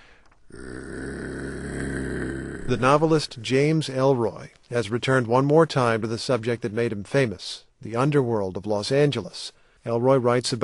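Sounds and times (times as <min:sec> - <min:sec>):
man imitating a dog's growl with his voice: 0:00.5 - 0:03.4
speech: 0:02.7 - 0:10.6.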